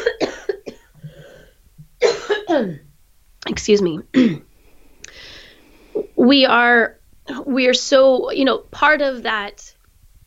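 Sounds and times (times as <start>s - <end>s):
person coughing: 0.0s - 2.8s, 4.1s - 4.5s
speech: 2.5s - 2.9s, 3.6s - 4.5s, 6.2s - 9.8s.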